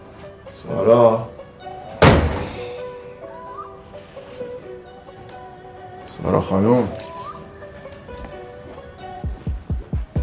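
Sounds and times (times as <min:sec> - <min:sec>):
faint tonal background: 0:00.0 - 0:09.7
speech: 0:00.5 - 0:01.4, 0:06.2 - 0:07.1
house door shutting with a heavy thud: 0:02.0 - 0:02.8.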